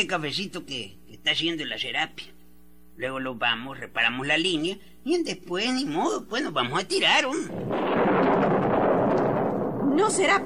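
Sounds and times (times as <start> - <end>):
speech: 0.0 - 2.4, 3.0 - 8.0, 10.0 - 10.4
thunder rumbling during a storm: 7.3 - 10.4.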